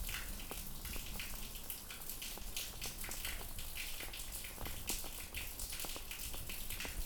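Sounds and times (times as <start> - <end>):
rain into a sewer: 0.0 - 7.0.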